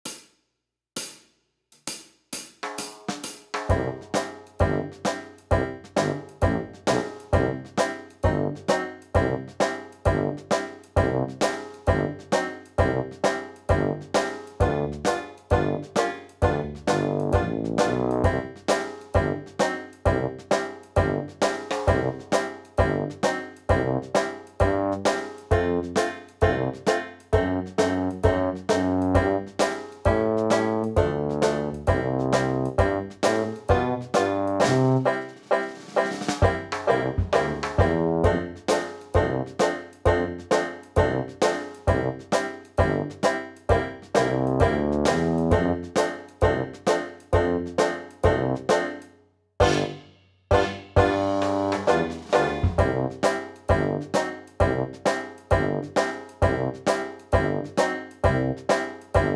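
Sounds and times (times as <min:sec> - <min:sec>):
Dixieland backing music: 0:03.7 - 0:59.3.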